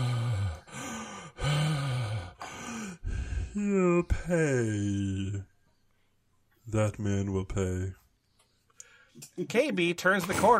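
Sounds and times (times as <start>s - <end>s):
heavy labored breathing: 0.0s - 3.9s
speech: 3.6s - 5.5s, 6.7s - 8.0s, 9.2s - 10.5s.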